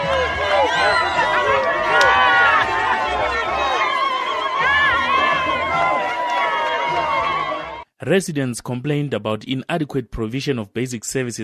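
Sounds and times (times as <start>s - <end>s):
large crowd cheering: 0.0s - 7.8s
many high warbling ululations: 0.0s - 7.8s
speech: 8.0s - 11.4s.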